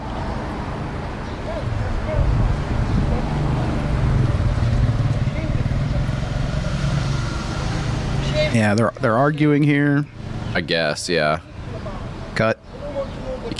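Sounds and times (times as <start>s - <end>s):
loud motorbikes passing on a street: 0.0s - 13.5s
speech: 8.5s - 11.5s, 12.4s - 12.8s.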